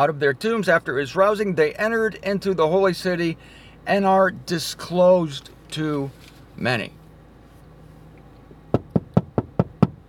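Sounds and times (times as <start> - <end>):
speech: 0.0 - 7.0
knocking on a door: 8.7 - 10.0.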